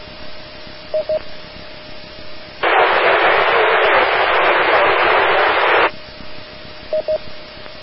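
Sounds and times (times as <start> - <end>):
thin hum: 0.0 - 7.8
loud burst of static hiss: 2.6 - 5.9
weak garbled ham radio transmission from a station calling in to a net: 2.6 - 5.9.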